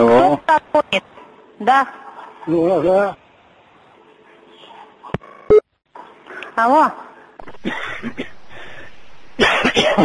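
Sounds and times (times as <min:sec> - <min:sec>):
speech: 0:00.0 - 0:03.2, 0:06.6 - 0:08.3, 0:09.4 - 0:10.0
person coughing into a telephone handset: 0:09.4 - 0:10.0.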